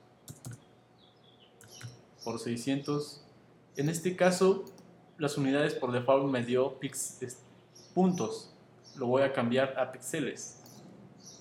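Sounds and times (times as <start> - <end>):
soft keystrokes on a computer keyboard: 0.3 - 0.6, 1.6 - 2.0
speech: 2.2 - 10.6.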